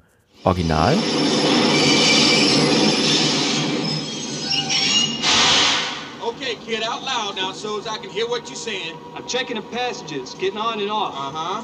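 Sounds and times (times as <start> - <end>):
speech: 0.4 - 1.2, 6.5 - 11.6
subway train rumbling: 0.4 - 11.6
sharp metallic screech: 0.8 - 7.8
subway train wheels squealing: 0.8 - 11.6.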